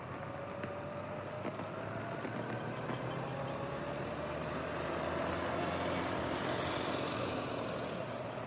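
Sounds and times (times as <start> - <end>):
motorcycle engines of an escort convoy roaring past: 0.0 - 8.4.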